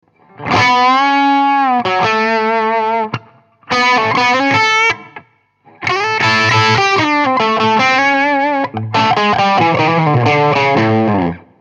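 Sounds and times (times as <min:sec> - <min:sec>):
blues guitar lick through a Rambler 25W amplifier: 0:00.1 - 0:11.5.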